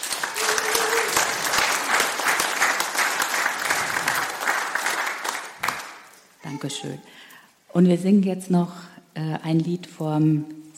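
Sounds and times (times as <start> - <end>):
audience applauding warmly: 0.0 - 6.2
speech: 6.5 - 10.7.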